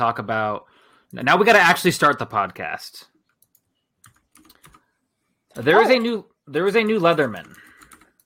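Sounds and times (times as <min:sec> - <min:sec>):
speech: 0:00.0 - 0:03.1, 0:05.6 - 0:07.6
computer keyboard typing: 0:03.2 - 0:05.0, 0:07.0 - 0:08.2.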